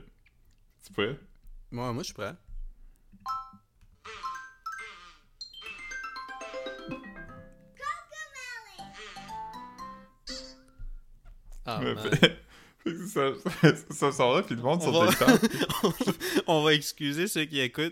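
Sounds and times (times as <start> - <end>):
speech: 0.9 - 2.5, 11.7 - 17.9
magical fairy-dust chime effect with twinkling bell-like tones: 4.3 - 7.5
high childlike voices: 7.8 - 9.4
laughter: 11.7 - 13.9, 14.9 - 16.5.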